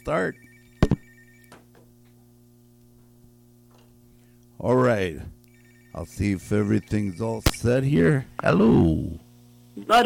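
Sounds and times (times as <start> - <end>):
speech: 0.0 - 0.5, 4.6 - 5.4, 6.0 - 9.2, 9.8 - 10.0
telephone ringing: 0.0 - 1.8, 5.4 - 7.4
steady low electrical hum: 0.0 - 10.0.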